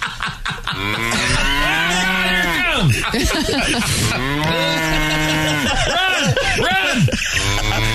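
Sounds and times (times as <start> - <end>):
laughter: 0.0 - 7.9
speech: 0.8 - 1.2, 2.8 - 7.9
cow mooing: 0.8 - 2.6, 4.1 - 5.8, 7.4 - 7.9.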